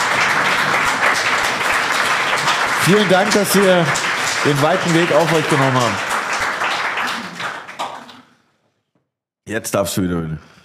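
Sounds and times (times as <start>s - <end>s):
audience applause at a wine-tasting event: 0.0s - 8.4s
speech: 2.9s - 6.0s, 9.5s - 10.6s.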